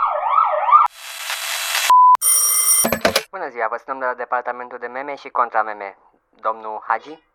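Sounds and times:
police car siren wailing: 0:00.0 - 0:00.9
speech: 0:03.5 - 0:07.3.

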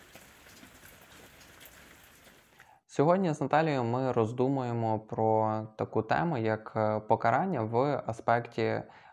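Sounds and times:
steady rain pattering on roofs outdoors: 0:00.0 - 0:02.6
speech: 0:03.0 - 0:09.0.

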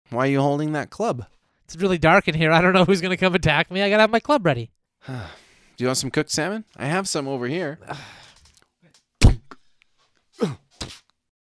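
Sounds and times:
speech: 0:00.1 - 0:08.3, 0:10.4 - 0:10.6
toe stubbed against something in the dark: 0:09.2 - 0:09.6, 0:10.8 - 0:11.0
person crying out: 0:10.4 - 0:10.6.

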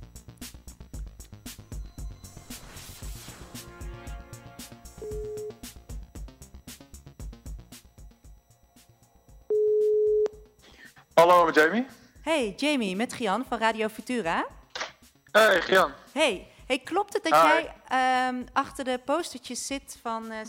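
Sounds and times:
telephone ringing tones while placing a call: 0:05.0 - 0:05.7, 0:09.4 - 0:10.4
speech: 0:11.2 - 0:14.6, 0:15.4 - 0:20.4.

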